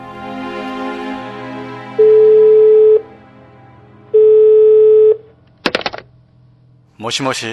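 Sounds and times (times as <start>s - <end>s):
low drone: 0.0s - 7.5s
ringback tones over a phone line: 2.0s - 3.0s, 4.1s - 5.3s
speech: 7.0s - 7.5s.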